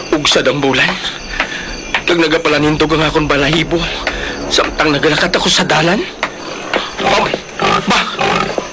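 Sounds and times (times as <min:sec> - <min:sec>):
speech: 0:00.1 - 0:01.2, 0:02.1 - 0:06.2
pig squealing: 0:04.7 - 0:08.7.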